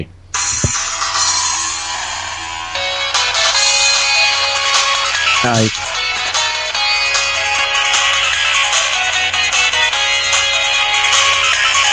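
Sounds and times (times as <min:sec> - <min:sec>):
bright electronic cell phone ringtone: 0:00.4 - 0:11.9
speech: 0:05.4 - 0:05.8.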